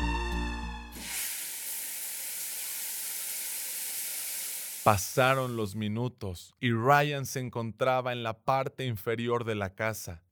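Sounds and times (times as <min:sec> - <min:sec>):
shower water spray running: 0:01.0 - 0:05.6
speech: 0:04.8 - 0:10.2.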